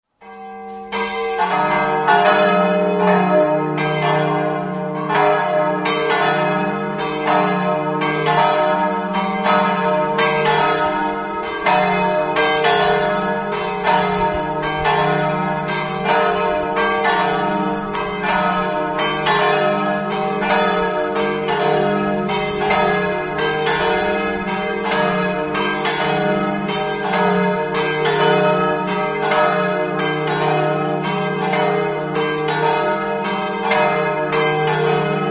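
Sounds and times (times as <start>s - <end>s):
bells ringing in Manzano: 0.2s - 35.2s.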